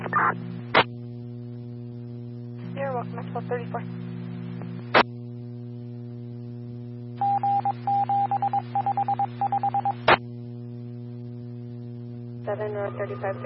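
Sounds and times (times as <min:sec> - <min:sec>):
steady electrical hum: 0:00.0 - 0:13.4
speech: 0:03.0 - 0:04.2, 0:12.6 - 0:13.4
fire dispatch paging radio alert tones: 0:07.2 - 0:10.0.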